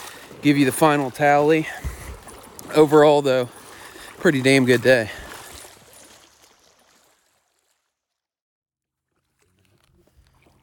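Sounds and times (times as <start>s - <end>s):
steady rushing wash of a boat on a river at night: 0.0s - 6.3s
speech: 0.4s - 1.9s, 2.7s - 3.6s, 4.2s - 5.2s.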